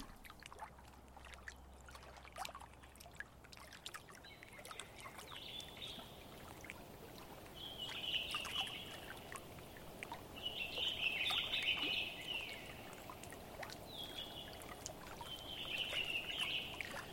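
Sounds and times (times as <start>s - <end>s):
river flowing: 0.0s - 17.1s
birds singing: 4.2s - 6.6s, 7.5s - 17.1s.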